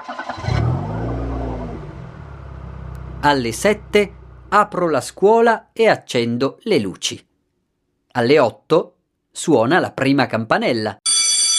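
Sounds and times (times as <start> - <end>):
car engine cranking, starting and revving as the driver sets off for school: 0.0 - 5.2
speech: 3.2 - 7.3, 8.2 - 11.0.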